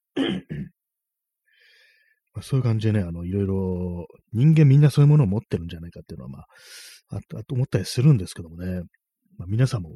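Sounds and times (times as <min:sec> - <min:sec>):
harsh coughs or throat-clearing bursts: 0:00.1 - 0:00.8
speech: 0:00.2 - 0:00.7, 0:02.4 - 0:09.9.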